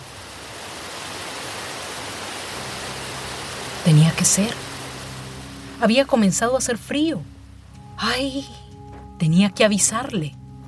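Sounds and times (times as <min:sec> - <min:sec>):
waterfall roaring: 0:00.0 - 0:07.8
speech: 0:03.9 - 0:04.6, 0:05.8 - 0:07.3, 0:08.0 - 0:08.6, 0:09.2 - 0:10.4.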